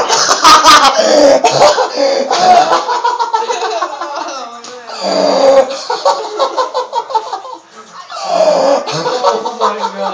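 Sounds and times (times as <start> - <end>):
laughter: 0.0 - 1.0, 1.6 - 4.5, 5.7 - 7.7, 8.9 - 10.1
lively voices: 0.0 - 10.1
person coughing: 0.4 - 2.7.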